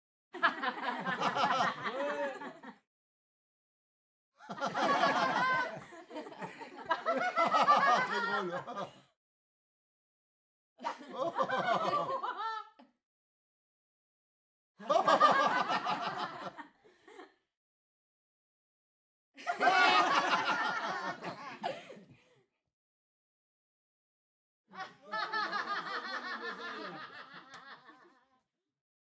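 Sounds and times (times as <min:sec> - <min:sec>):
small audience crowd laughing: 0:00.4 - 0:02.8, 0:04.4 - 0:09.1, 0:10.8 - 0:13.0, 0:14.8 - 0:17.4, 0:19.4 - 0:22.4, 0:24.7 - 0:28.4.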